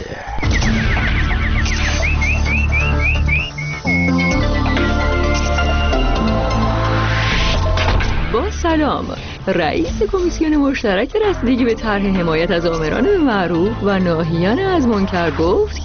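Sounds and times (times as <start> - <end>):
quick rising bird-like chirps sound effect: 0.2 - 5.1
loud sustained musical backing: 0.4 - 15.8
speech: 8.9 - 15.8.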